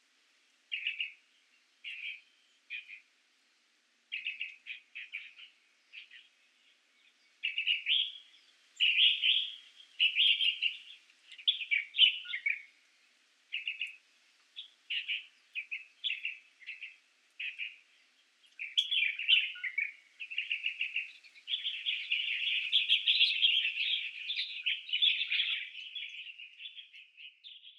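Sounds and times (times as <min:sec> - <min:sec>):
Chinese bulbul calling in Hong Kong: 0:00.7 - 0:01.2, 0:01.8 - 0:03.1, 0:04.1 - 0:06.3, 0:07.4 - 0:12.7, 0:13.5 - 0:14.0, 0:14.6 - 0:26.8.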